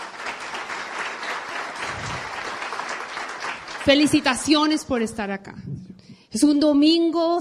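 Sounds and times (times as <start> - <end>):
audience applause of many hands: 0.0 - 4.9
speech: 3.9 - 7.3.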